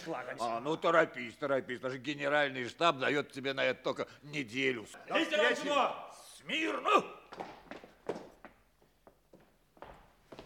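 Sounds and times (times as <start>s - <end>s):
speech: 0.0s - 8.2s
heavy stomping footsteps on a floor: 7.3s - 10.4s.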